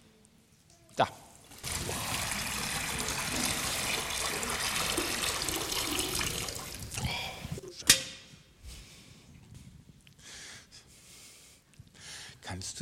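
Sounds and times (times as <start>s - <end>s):
faint water drips: 1.5s - 7.6s
water pouring into a baptismal font: 1.5s - 7.6s.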